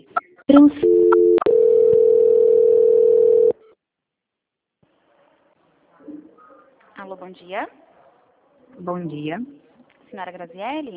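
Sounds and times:
speech: 0:00.5 - 0:01.4, 0:07.3 - 0:07.8, 0:08.8 - 0:10.9
telephone beeps while a call is transferred: 0:00.6 - 0:03.6.

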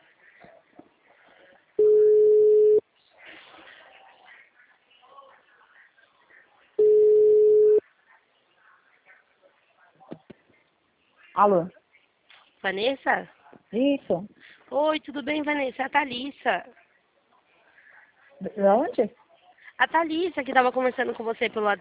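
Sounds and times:
telephone ringback tone of an outgoing call: 0:01.8 - 0:02.8, 0:06.8 - 0:07.8
speech: 0:11.4 - 0:11.8, 0:12.6 - 0:16.8, 0:18.4 - 0:19.2, 0:19.8 - 0:21.7.

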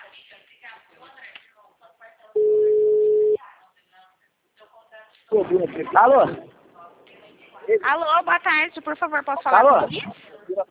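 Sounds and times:
telephone ringback tone of an outgoing call: 0:02.4 - 0:03.4
speech: 0:05.3 - 0:06.5, 0:07.7 - 0:10.6.

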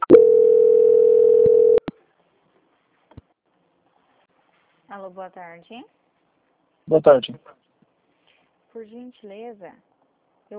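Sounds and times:
steady mid-pitched telephone tone during a call transfer: 0:00.0 - 0:01.8
speech: 0:05.0 - 0:06.0, 0:06.9 - 0:07.7, 0:08.7 - 0:09.9.

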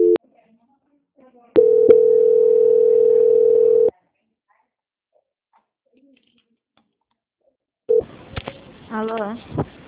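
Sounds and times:
short beeps: 0:00.0 - 0:00.2
telephone call transfer tone: 0:00.0 - 0:00.2, 0:01.6 - 0:03.9
speech: 0:08.9 - 0:09.6.

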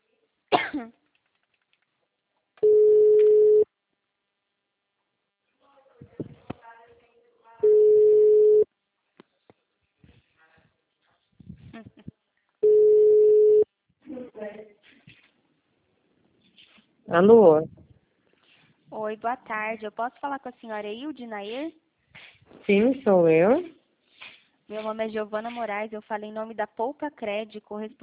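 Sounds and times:
speech: 0:00.7 - 0:01.0, 0:17.2 - 0:17.8, 0:19.1 - 0:21.8, 0:22.6 - 0:23.8, 0:24.7 - 0:28.0
telephone ringback tone of an outgoing call: 0:02.6 - 0:03.6, 0:07.6 - 0:08.6, 0:12.6 - 0:13.6.

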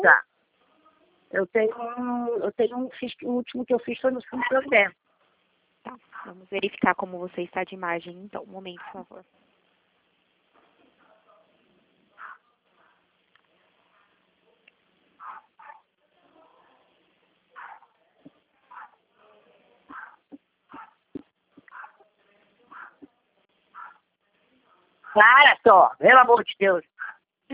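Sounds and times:
speech: 0:00.0 - 0:00.3, 0:01.3 - 0:05.0, 0:05.8 - 0:09.4, 0:25.2 - 0:26.9
dog barking: 0:06.0 - 0:06.4, 0:08.8 - 0:09.1, 0:11.0 - 0:13.1, 0:13.8 - 0:14.2, 0:15.2 - 0:15.9, 0:17.5 - 0:18.0, 0:18.7 - 0:19.0, 0:19.9 - 0:21.0, 0:21.6 - 0:22.1, 0:22.7 - 0:23.1, 0:23.7 - 0:24.1, 0:27.0 - 0:27.2.

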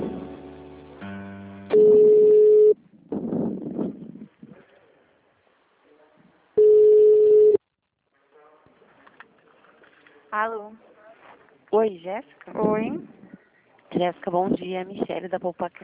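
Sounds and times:
telephone line tone while a call is transferred: 0:01.7 - 0:02.8, 0:06.6 - 0:07.6
speech: 0:11.7 - 0:13.2, 0:14.0 - 0:15.8.

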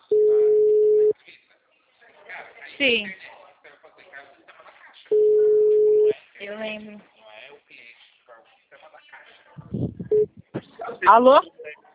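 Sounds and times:
telephone line tone while a call is being placed: 0:00.1 - 0:01.1, 0:05.2 - 0:06.1
speech: 0:02.8 - 0:03.2, 0:11.0 - 0:11.6.

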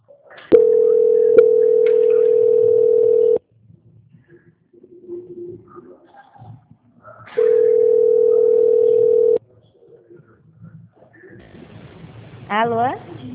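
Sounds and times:
faint sounds: 0:00.0 - 0:13.3
telephone tone during a call transfer: 0:00.5 - 0:03.4, 0:07.4 - 0:09.4.

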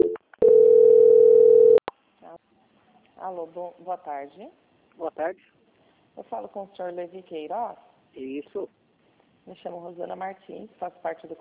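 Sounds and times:
telephone tone while a call is being transferred: 0:00.0 - 0:01.8
speech: 0:03.3 - 0:05.6, 0:06.2 - 0:08.8, 0:09.5 - 0:11.4.

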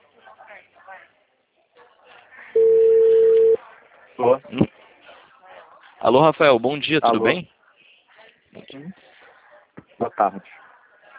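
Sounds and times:
telephone tone beeping: 0:02.6 - 0:03.6
speech: 0:06.0 - 0:07.5, 0:10.0 - 0:10.6.

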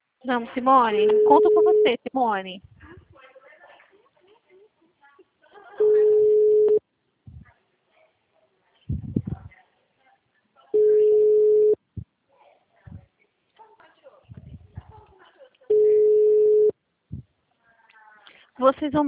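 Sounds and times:
speech: 0:00.2 - 0:02.7, 0:18.6 - 0:19.0
telephone ringback tones on an unanswered call: 0:01.0 - 0:02.0, 0:05.8 - 0:06.8, 0:10.8 - 0:11.8, 0:15.7 - 0:16.7.

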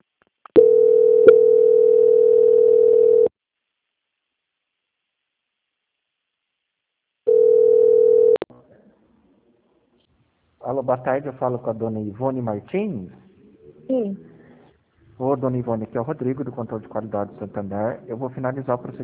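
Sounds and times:
telephone dial tone during a call transfer: 0:00.6 - 0:03.3, 0:07.3 - 0:08.4
speech: 0:10.8 - 0:13.2, 0:13.9 - 0:14.3, 0:15.2 - 0:19.0.

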